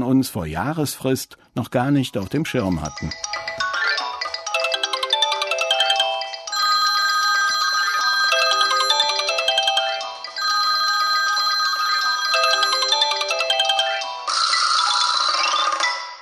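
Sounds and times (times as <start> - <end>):
speech: 0.1 - 3.4
smartwatch and phone electronic ringtones chiming: 2.7 - 16.1.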